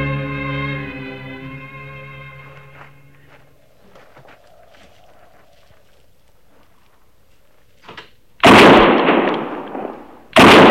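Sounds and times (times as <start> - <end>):
gunshots fired at an antelope: 8.4 - 10.6.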